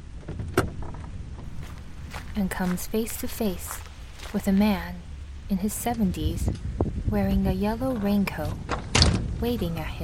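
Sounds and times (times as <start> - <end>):
steady low rumble of idling engine or ambient noise: 0.0 - 10.0
speech: 2.4 - 8.7, 9.4 - 10.0
car door latch releasing as a man opens the door: 8.7 - 9.3.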